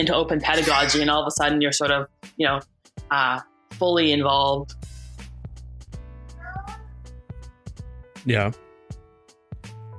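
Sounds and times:
speech: 0:00.0 - 0:04.9, 0:08.2 - 0:08.6
toddler calling out: 0:06.4 - 0:06.9.

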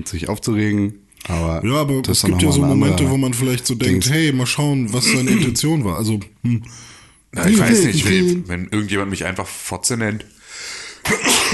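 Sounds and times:
speech: 0:00.0 - 0:11.5
soft intake of breath: 0:06.7 - 0:07.3, 0:10.4 - 0:11.1
sneeze: 0:11.0 - 0:11.5.

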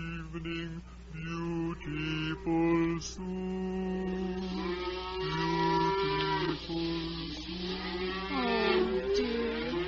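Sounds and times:
steady hiss: 0:00.0 - 0:09.8
speech: 0:00.4 - 0:03.7
cows being driven home mooing: 0:03.9 - 0:09.8.

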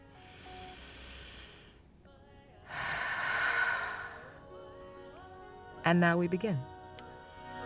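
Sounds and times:
person taking a deep breath: 0:00.2 - 0:01.9, 0:02.7 - 0:04.4
speech: 0:05.9 - 0:06.7.

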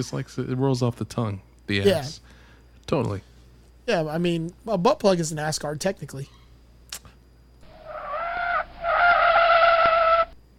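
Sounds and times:
speech: 0:00.0 - 0:03.3, 0:03.9 - 0:06.4
car tires squealing as a car skids off the road: 0:07.7 - 0:10.4.

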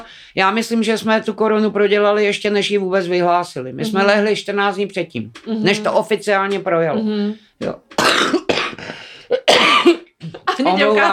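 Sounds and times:
speech: 0:00.0 - 0:08.5, 0:10.6 - 0:11.1
smoker's harsh raspy chesty coughing fit: 0:08.0 - 0:10.5.

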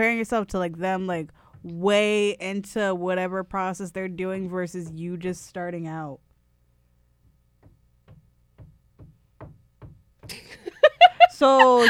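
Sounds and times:
speech: 0:00.0 - 0:06.3, 0:11.4 - 0:11.8
dull knocks on a wall: 0:07.6 - 0:10.6
laughter: 0:10.3 - 0:11.8.

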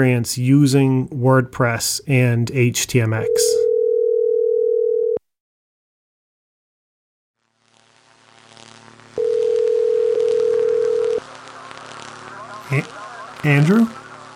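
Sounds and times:
speech: 0:00.0 - 0:03.6, 0:12.7 - 0:14.0
electronic phone ringing tone: 0:03.2 - 0:05.2, 0:09.2 - 0:11.2
hissy phone line noise: 0:07.5 - 0:09.4, 0:10.2 - 0:14.3.

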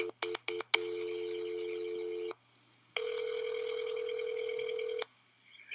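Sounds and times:
telephone dialing tones: 0:00.0 - 0:02.3, 0:03.0 - 0:05.0.

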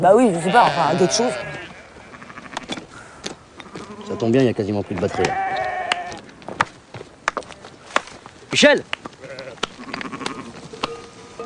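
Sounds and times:
speech: 0:00.0 - 0:01.5, 0:04.1 - 0:05.5, 0:08.5 - 0:09.0
sheep bleating: 0:00.3 - 0:02.7, 0:03.6 - 0:04.4, 0:05.0 - 0:06.2, 0:09.2 - 0:11.4.

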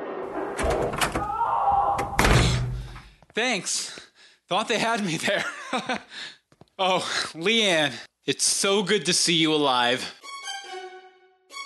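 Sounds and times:
door clattering open: 0:00.6 - 0:03.1
speech: 0:00.8 - 0:01.2, 0:03.4 - 0:10.2.

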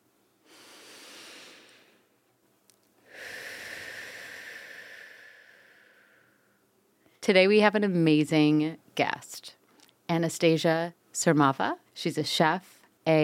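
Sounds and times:
deep breath taken to open a guided mindfulness session: 0:00.4 - 0:02.1, 0:03.0 - 0:07.2
speech: 0:07.2 - 0:13.2.

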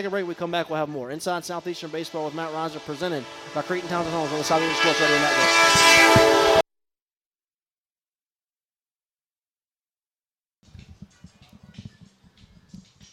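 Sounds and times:
speech: 0:00.0 - 0:06.6
loud blaring horn from a passing train: 0:01.9 - 0:06.6.

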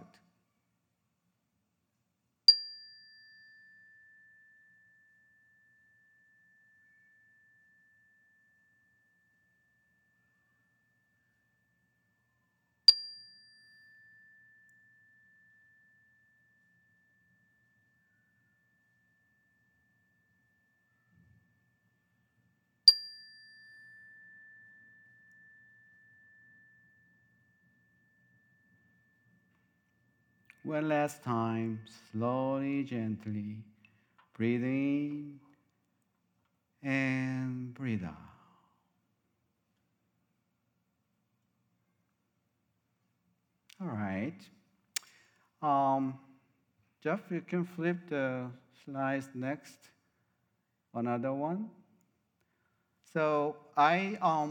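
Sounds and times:
meditation chime struck to begin a centering prayer: 0:02.5 - 0:32.2
speech: 0:30.6 - 0:33.7, 0:34.4 - 0:35.5, 0:36.8 - 0:38.3, 0:43.8 - 0:44.6, 0:45.6 - 0:46.2, 0:47.0 - 0:50.0, 0:50.9 - 0:51.8, 0:53.1 - 0:54.4.

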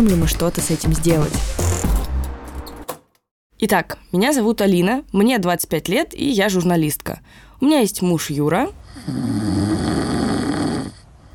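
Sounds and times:
speech: 0:00.0 - 0:01.9, 0:03.6 - 0:10.0
dog grunting: 0:08.9 - 0:11.1.

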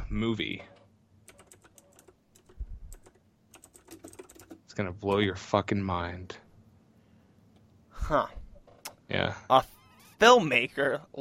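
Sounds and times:
speech: 0:00.1 - 0:00.8, 0:04.8 - 0:06.4, 0:08.1 - 0:08.4, 0:09.1 - 0:11.1
rapid keystrokes on a computer keyboard typing a search: 0:01.3 - 0:04.6.

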